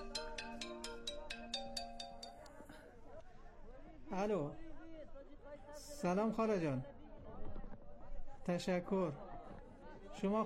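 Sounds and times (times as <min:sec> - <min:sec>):
mobile phone ringtone with chiming notes: 0:00.0 - 0:02.6
faint noise: 0:00.0 - 0:10.4
speech: 0:04.1 - 0:04.6, 0:06.0 - 0:07.0, 0:08.5 - 0:09.3, 0:10.2 - 0:10.4.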